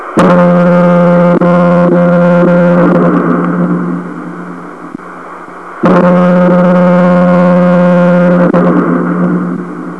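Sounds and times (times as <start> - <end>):
foghorn: 0.2 - 4.0, 5.8 - 9.7.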